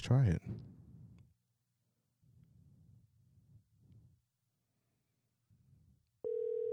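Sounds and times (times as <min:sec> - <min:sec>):
speech: 0:00.1 - 0:00.6
low telephone ringing tones of an outgoing call: 0:06.2 - 0:06.7.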